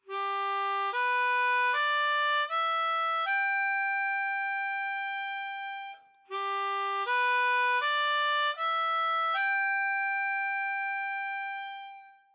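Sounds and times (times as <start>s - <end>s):
cross harp harmonica exercise: 0.0s - 12.3s.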